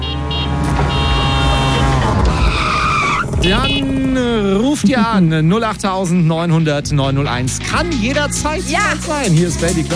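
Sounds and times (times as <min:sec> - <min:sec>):
tuk-tuk engine and road roar: 0:00.0 - 0:07.8
tyres squealing as a tuk-tuk skids: 0:01.0 - 0:03.9
speech: 0:03.4 - 0:09.9.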